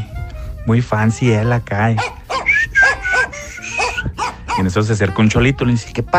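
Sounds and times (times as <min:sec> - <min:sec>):
speech: 0:00.7 - 0:02.2, 0:04.6 - 0:06.1
dog barking: 0:02.0 - 0:04.8.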